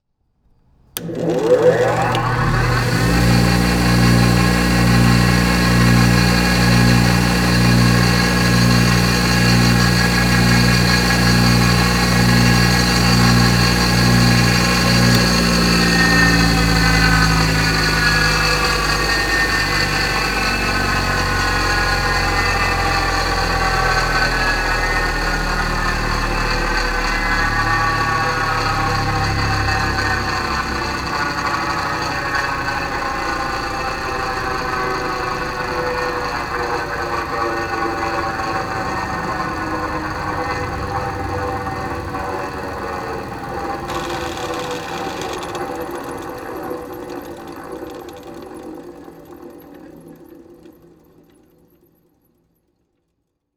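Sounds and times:
industrial tool grinder switching on and off: 0.9s - 48.2s.

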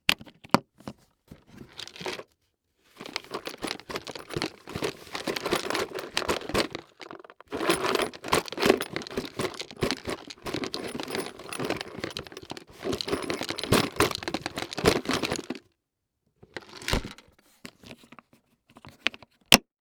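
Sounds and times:
digging through industry tool box: 0.8s - 15.6s, 16.5s - 18.2s
industry tool box unlocking and opening: 3.0s - 15.6s.

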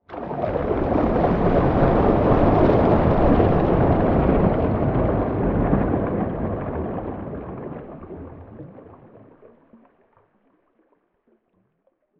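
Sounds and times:
water splash: 0.0s - 9.5s
object sinking underwater: 0.0s - 11.0s
water gurgling: 0.0s - 12.1s.

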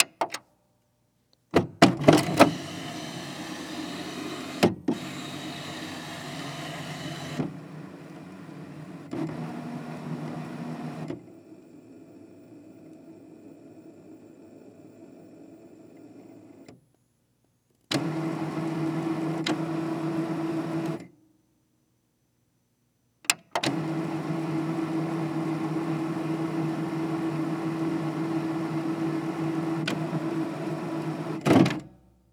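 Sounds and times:
electronic printer turning on and off: 1.8s - 11.4s, 17.9s - 21.0s, 23.6s - 31.9s.

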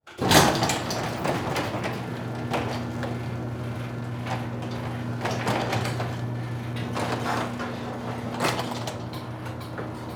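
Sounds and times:
household garage door opening heard from interior: 0.1s - 10.1s.

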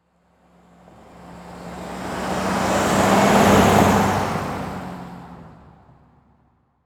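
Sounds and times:
Jeep Commander driving by slowly: 1.0s - 5.7s.

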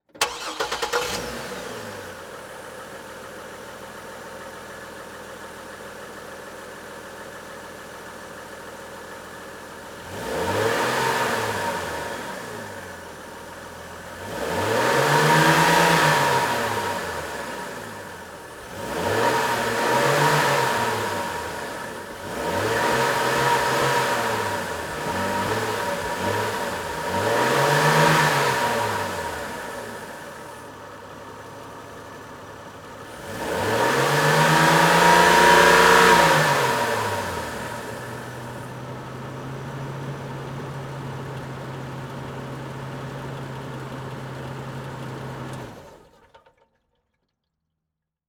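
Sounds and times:
Chevy Trailblazer engine starting, revving and shutting off, recorded under the car: 0.1s - 3.2s, 9.7s - 31.4s, 32.8s - 46.6s.

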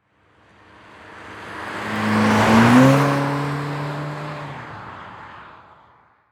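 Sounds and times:
Honda Civic driving by fast: 0.7s - 5.6s.

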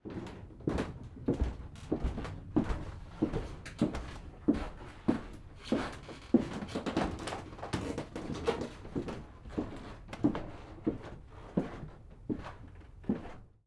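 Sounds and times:
foley footsteps of person walking on second floor: 0.0s - 13.4s.

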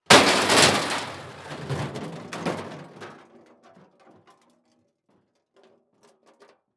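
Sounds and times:
long car crash impact: 0.1s - 2.7s.

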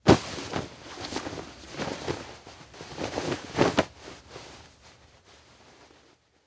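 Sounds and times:
person grabbing a coat and rustling it: 0.0s - 5.1s.

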